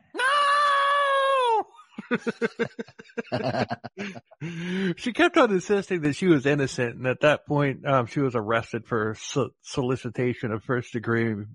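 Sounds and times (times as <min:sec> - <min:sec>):
woman screeching in a TV show clip: 0:00.1 - 0:01.6
laughter: 0:02.0 - 0:07.0
speech: 0:02.1 - 0:11.5
woman wailing and talking in distress in a TV show clip: 0:03.3 - 0:04.1.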